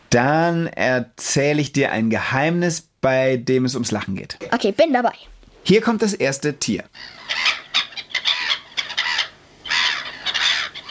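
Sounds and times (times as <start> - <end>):
speech: 0.1 - 7.6
black-headed gulls calling: 6.9 - 10.9.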